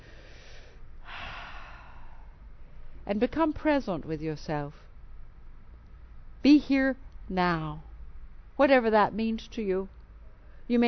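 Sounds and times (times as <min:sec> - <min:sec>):
deep breathing into the belly: 0:00.0 - 0:03.0
speech: 0:03.1 - 0:04.8, 0:06.4 - 0:07.9, 0:08.6 - 0:10.0, 0:10.7 - 0:10.8.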